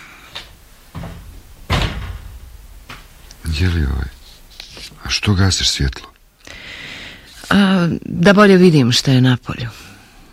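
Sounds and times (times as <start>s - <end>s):
window frame knocking and clattering as a window is opened: 0.9s - 3.0s
speech: 3.5s - 4.2s, 5.1s - 6.1s, 7.6s - 9.9s.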